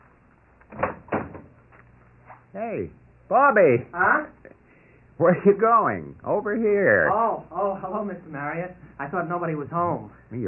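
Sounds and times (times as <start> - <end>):
front door opening with wooden clunks and latch: 0.6 - 1.9
speech: 2.6 - 4.6, 5.2 - 10.4.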